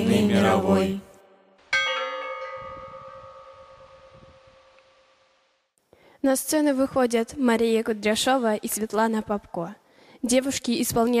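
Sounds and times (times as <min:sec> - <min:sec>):
speech: 0:00.1 - 0:01.0, 0:06.2 - 0:11.1
single bell tolling: 0:01.7 - 0:05.0.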